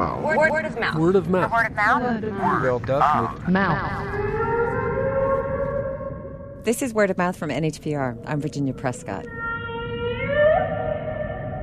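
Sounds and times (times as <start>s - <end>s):
speech: 0.0s - 4.4s, 6.6s - 9.4s
humpback whale moaning tonal call: 3.7s - 6.6s, 9.2s - 11.6s.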